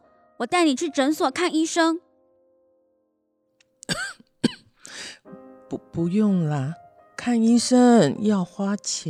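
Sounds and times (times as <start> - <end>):
speech: 0.4 - 2.1, 5.7 - 9.0
elderly woman coughing hoarsely: 3.8 - 4.8.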